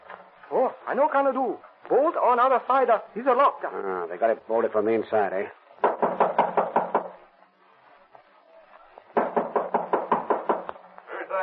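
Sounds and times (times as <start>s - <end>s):
speech: 0.6s - 5.6s
heavy rapid pounding on a locked door: 5.8s - 7.2s, 9.2s - 10.7s.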